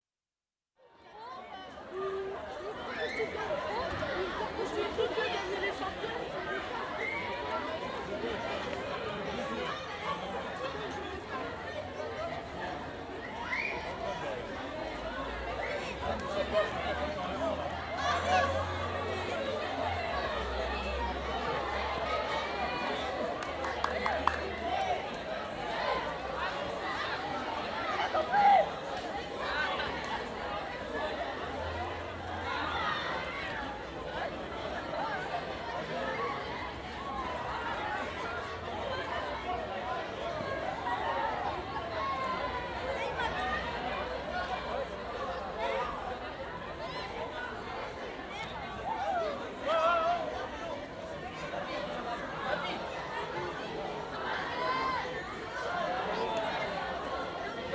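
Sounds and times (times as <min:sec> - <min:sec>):
children playing at recess outdoors: 0:00.8 - 0:57.7.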